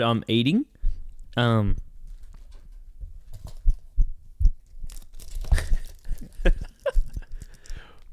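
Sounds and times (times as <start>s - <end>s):
speech: 0.0s - 0.7s, 1.4s - 1.8s
brittle honeycomb chocolate bar snapped in two: 4.5s - 8.1s.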